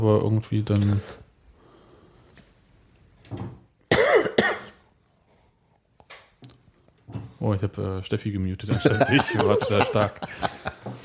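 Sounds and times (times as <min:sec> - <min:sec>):
speech: 0:00.0 - 0:01.2, 0:07.4 - 0:10.6
person coughing and clearing throat: 0:03.9 - 0:04.8
laughter: 0:08.7 - 0:11.0.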